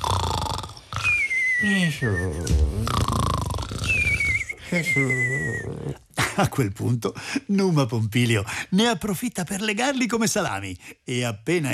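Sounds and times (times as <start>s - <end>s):
exaggerated cartoon-style snoring of characters in deep sleep after drinking: 0.0s - 6.1s
speech: 1.6s - 3.2s, 3.8s - 11.7s.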